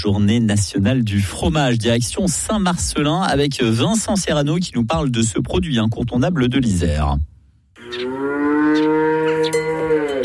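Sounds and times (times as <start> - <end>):
speech: 0.0 - 7.3
dairy cow mooing on a family farm: 7.8 - 10.2.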